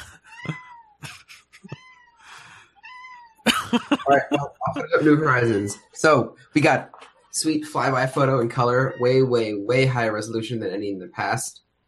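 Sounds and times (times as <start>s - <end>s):
laughter: 0.0s - 2.6s, 3.5s - 6.7s
cat meowing: 1.7s - 2.2s, 2.8s - 3.4s, 8.7s - 9.5s
speech: 3.7s - 11.6s.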